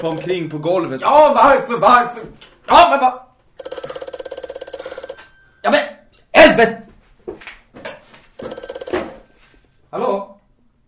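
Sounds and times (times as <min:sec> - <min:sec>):
telephone ringing under the bed with an electric bell trill: 0:00.0 - 0:00.9, 0:03.6 - 0:06.2, 0:08.4 - 0:10.8
speech: 0:00.0 - 0:03.2, 0:05.6 - 0:06.8.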